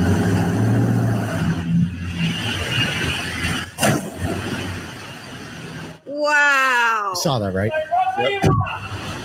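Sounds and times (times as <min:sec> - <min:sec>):
car engine revving while reversing: 0:00.0 - 0:05.5
speech: 0:07.2 - 0:09.1.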